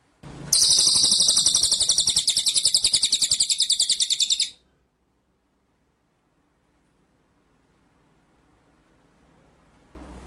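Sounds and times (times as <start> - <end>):
white-rumped shama singing high-pitched pulsing trill: 0.6 - 4.6.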